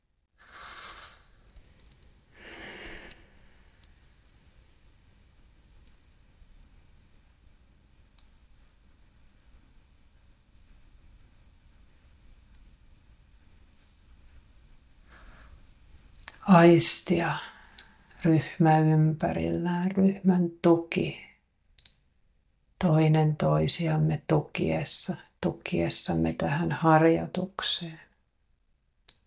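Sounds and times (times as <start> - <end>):
steady low hiss: 0.0 - 29.2
slow deep breaths during a guided group breathing exercise: 0.4 - 4.1, 15.0 - 16.1
speech: 16.5 - 17.5, 18.2 - 21.3, 22.8 - 28.0.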